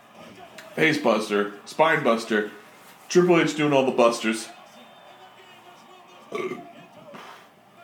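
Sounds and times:
speech: 0.8s - 4.6s
loud guttural burp: 6.3s - 6.7s.

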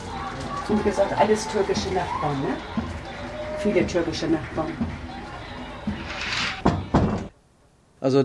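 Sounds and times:
speech: 0.7s - 2.9s, 3.6s - 5.0s, 8.0s - 8.2s
balcony door sliding shut: 5.9s - 7.3s.

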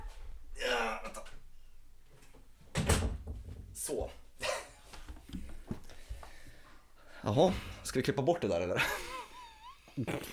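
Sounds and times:
door swinging shut with thud and rattle: 2.7s - 3.7s
speech: 3.9s - 4.2s, 7.2s - 9.0s, 10.0s - 10.3s.

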